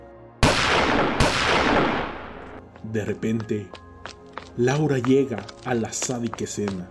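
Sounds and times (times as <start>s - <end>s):
gunshots: 0.4s - 2.6s
speech: 2.9s - 3.8s, 4.6s - 6.8s.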